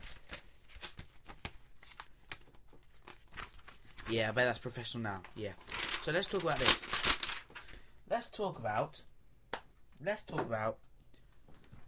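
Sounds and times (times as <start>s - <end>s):
paper rustling and crinkling: 0.0s - 7.8s
speech: 4.1s - 7.0s, 8.2s - 9.1s, 10.0s - 10.8s.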